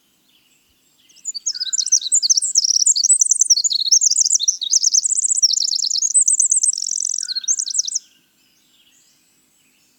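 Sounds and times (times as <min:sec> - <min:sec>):
winter wren singing: 0:01.1 - 0:08.0.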